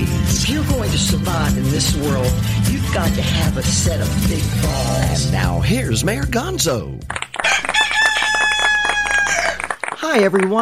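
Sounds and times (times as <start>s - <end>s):
speech: 0.5s - 7.2s, 10.1s - 10.6s
rooster crowing: 7.4s - 9.8s.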